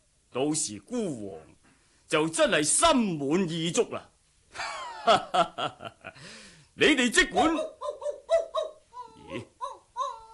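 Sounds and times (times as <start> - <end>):
speech: 0.4 - 7.8, 9.3 - 9.5
laughter: 4.6 - 6.2
legendary royal dragon dog yelping in a folk-tale drama: 7.4 - 10.3.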